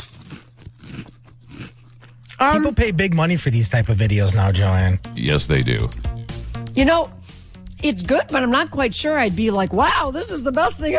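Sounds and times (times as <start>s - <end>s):
crunching frozen cereal chewed into a microphone: 0.0s - 2.2s
speech: 2.4s - 6.0s, 6.8s - 7.2s, 7.8s - 10.9s.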